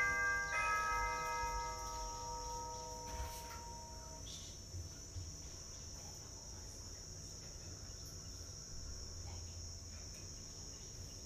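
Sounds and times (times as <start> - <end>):
doorbell chime: 0.0 - 4.2
faint steady high-pitched hum: 0.0 - 11.2.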